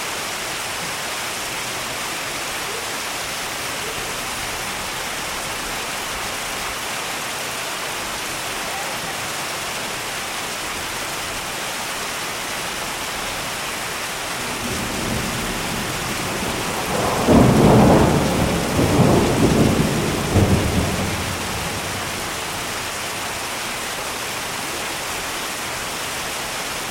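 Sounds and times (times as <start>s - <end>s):
rain falling: 0.0s - 26.8s
rolling thunder: 14.4s - 23.0s.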